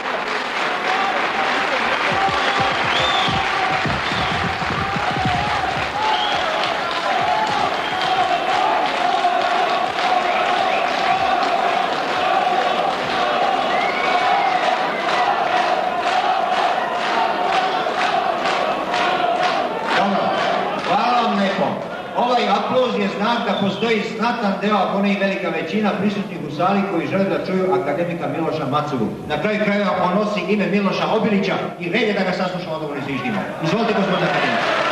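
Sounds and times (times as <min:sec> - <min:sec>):
crowd applause in an assembly hall: 0:00.0 - 0:22.9, 0:33.2 - 0:34.8
murmur of voices: 0:00.0 - 0:24.4
people cheering: 0:00.0 - 0:24.7, 0:33.0 - 0:34.8
speech: 0:23.8 - 0:34.8.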